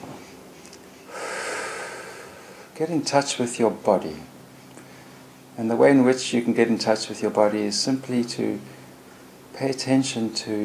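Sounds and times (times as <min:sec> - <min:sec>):
deep breath in and out during a guided meditation: 0:01.0 - 0:02.8
speech: 0:02.8 - 0:04.4, 0:05.6 - 0:08.8, 0:09.6 - 0:10.6.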